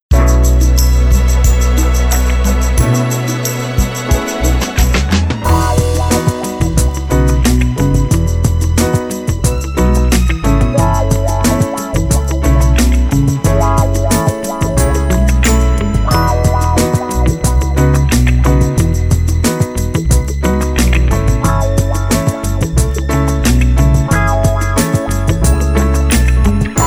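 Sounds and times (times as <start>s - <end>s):
retro 70s love song: 0.2s - 26.8s.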